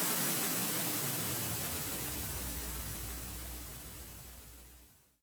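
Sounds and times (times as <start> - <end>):
descending white noise tension sweep: 0.1 - 5.0.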